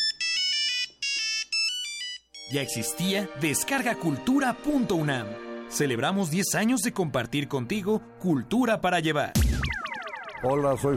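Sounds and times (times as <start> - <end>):
bright electronic telephone ringtone: 0.0 - 2.9
speech: 2.5 - 9.6, 10.4 - 10.9.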